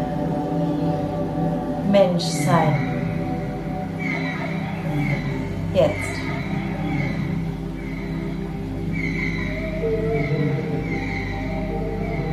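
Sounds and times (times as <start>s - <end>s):
steady low drone: 0.0s - 12.3s
speech: 1.9s - 2.9s, 5.8s - 6.3s
dolphin whistles: 4.0s - 12.3s.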